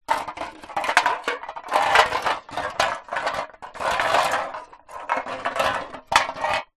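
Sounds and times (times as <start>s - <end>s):
empty drink cans rolling on concrete ground: 0.1s - 6.7s.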